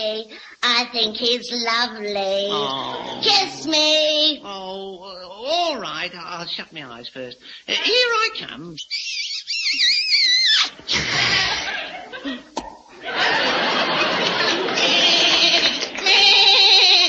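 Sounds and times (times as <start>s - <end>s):
speech: 0.0s - 13.2s
loud bursts of audience laughter: 10.9s - 16.0s
goat giving a quavering wavering bleat: 14.8s - 17.0s.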